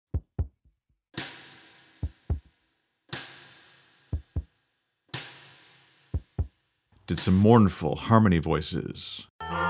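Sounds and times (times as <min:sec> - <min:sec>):
kick drum thumping in a heartbeat pattern: 0:00.1 - 0:00.6, 0:06.2 - 0:06.5
speech: 0:07.1 - 0:09.6.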